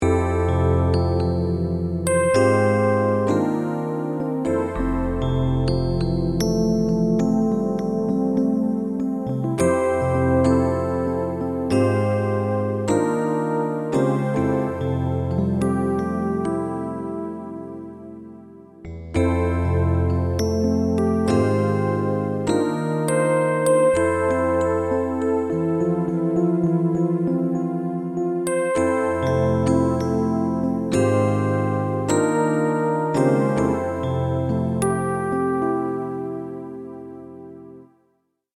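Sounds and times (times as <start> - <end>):
electric piano at 100 bpm: 0.0 - 38.0.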